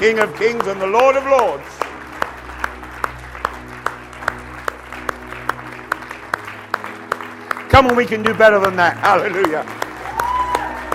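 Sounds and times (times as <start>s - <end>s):
speech: 0.0s - 1.9s, 7.8s - 9.8s
crowd clapping in rhythm as thanks offering: 0.0s - 10.9s.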